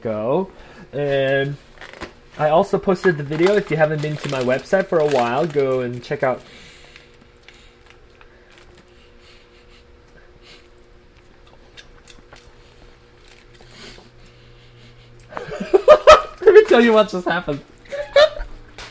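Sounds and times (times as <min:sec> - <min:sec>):
speech: 0:00.0 - 0:01.6, 0:02.4 - 0:06.7, 0:16.8 - 0:17.7
steady low hum from a fridge: 0:00.0 - 0:18.8
person breathing between bites: 0:06.4 - 0:10.7, 0:13.7 - 0:15.2
person chewing food recorded with binaural microphones: 0:06.8 - 0:15.4
laughter: 0:15.3 - 0:18.6.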